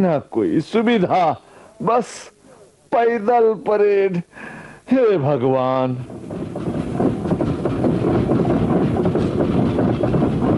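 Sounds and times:
speech: 0.0s - 6.5s
train passing through a railway station: 5.8s - 10.5s.

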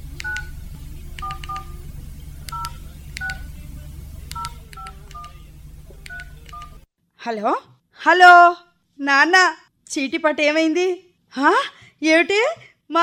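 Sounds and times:
faint steady low hum: 0.0s - 6.9s
telephone keypad touch-tones as a phone number is dialed: 0.2s - 0.5s, 1.2s - 1.8s, 2.5s - 3.5s, 4.3s - 5.4s, 6.0s - 6.8s
speech: 7.2s - 13.0s.

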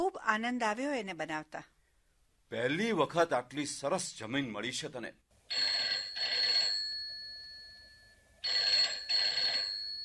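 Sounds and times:
speech: 0.0s - 1.7s, 2.5s - 5.7s
telephone ringing with warbling electronic trills: 5.5s - 10.0s.

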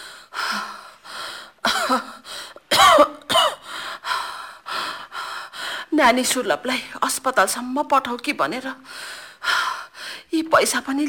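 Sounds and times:
short breaths: 0.0s - 1.6s, 3.6s - 5.9s, 8.8s - 10.3s
person with fever and cough coughing: 1.6s - 3.6s
speech: 1.9s - 2.1s, 6.0s - 9.2s, 10.4s - 11.0s.

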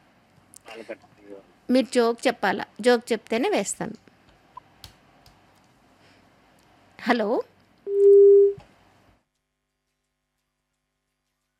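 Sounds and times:
speech: 0.8s - 4.1s, 7.1s - 7.5s
phone busy tone after a call drops: 7.9s - 8.6s.

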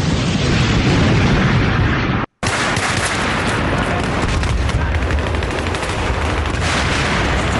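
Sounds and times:
heavy explosion blasts in a battle: 0.0s - 7.5s
gunfire bursts in a battle under heavy bombardment: 2.4s - 7.5s.

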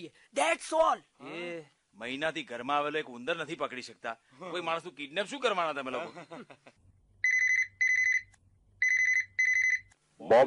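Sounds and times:
speech: 0.0s - 6.8s, 10.2s - 10.4s
telephone ringing with trilling electronic double rings: 7.2s - 9.9s.

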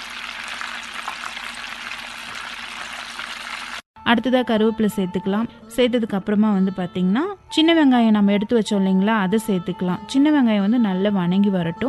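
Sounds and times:
mustard, cumin and fenugreek seeds sizzling in leftover hot oil: 0.0s - 3.8s
speech: 4.1s - 11.8s.

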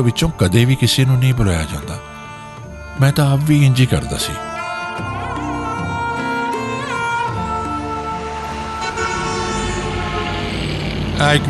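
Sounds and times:
speech: 0.0s - 2.1s, 3.0s - 4.5s, 11.2s - 11.4s
bus heading to the bus stand honking: 1.2s - 11.2s
bus heading to the bus stand passing with low engine rumble: 8.3s - 11.4s.

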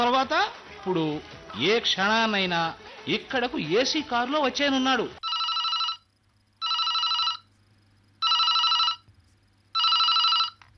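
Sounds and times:
speech: 0.0s - 5.2s
faint low hum: 5.1s - 10.7s
telephone bell ringing in a house: 5.2s - 7.5s, 8.2s - 9.0s, 9.8s - 10.6s.

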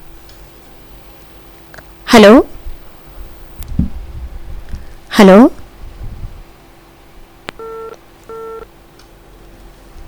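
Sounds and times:
low hiss: 0.0s - 10.0s
speech: 2.1s - 2.5s, 5.2s - 5.5s
short steady telephone line beeps after a call is cut off: 7.6s - 8.7s.

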